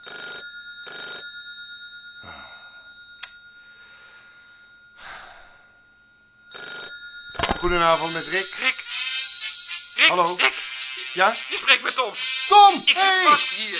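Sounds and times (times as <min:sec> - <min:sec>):
telephone ringing: 0:00.0 - 0:02.2, 0:06.4 - 0:13.7
person breathing and sighing heavily: 0:02.2 - 0:03.0, 0:03.7 - 0:05.9
speech: 0:07.6 - 0:08.8, 0:10.0 - 0:13.7.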